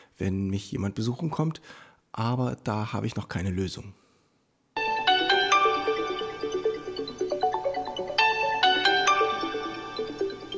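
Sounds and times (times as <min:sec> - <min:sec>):
speech: 0:00.2 - 0:04.0
apartment doorbell electronic chime: 0:04.8 - 0:10.5.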